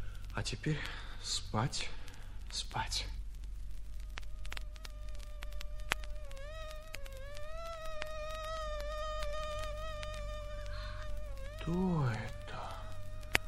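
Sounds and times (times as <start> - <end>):
faint clicks: 0.0 - 13.4
low hum: 0.0 - 13.4
speech: 0.4 - 3.2, 11.7 - 12.4
high-pitched mosquito whine: 4.0 - 13.4.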